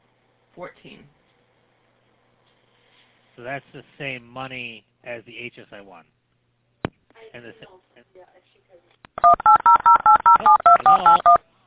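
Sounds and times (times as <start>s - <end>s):
speech: 0.6s - 1.2s, 3.4s - 6.2s, 7.2s - 11.5s
two-pitch telephone keypad dialing beeps on a phone line: 9.2s - 11.4s.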